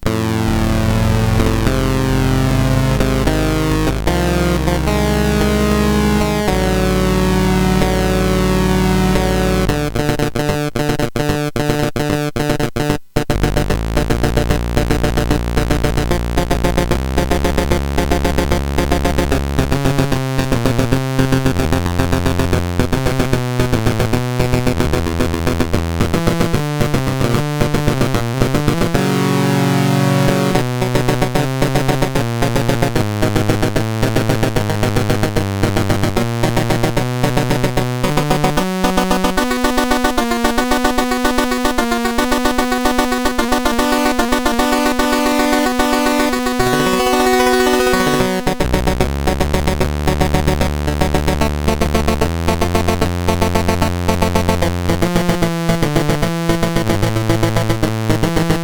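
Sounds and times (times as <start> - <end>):
chiptune game music on CSG8580R5 chip: 0.1 - 58.6.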